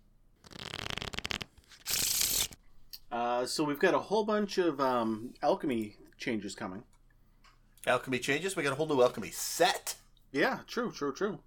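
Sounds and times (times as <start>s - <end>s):
deck of playing cards being riffle shuffled: 0.4s - 2.6s
speech: 3.4s - 6.9s, 7.8s - 11.4s.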